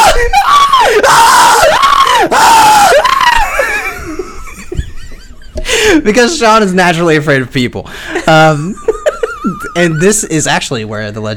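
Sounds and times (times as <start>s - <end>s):
man screaming to scare people: 0.0s - 3.8s
laughter: 3.3s - 6.0s, 8.1s - 10.4s
speech: 6.0s - 8.9s, 9.8s - 11.3s.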